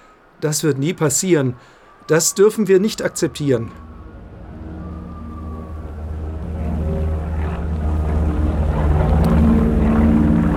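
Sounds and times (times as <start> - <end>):
speech: 0.4 - 3.9
propeller airplane droning overhead: 1.8 - 10.5.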